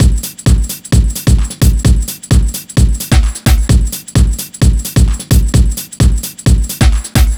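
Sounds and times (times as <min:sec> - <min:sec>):
house drum loop at 130 bpm: 0:00.0 - 0:07.3.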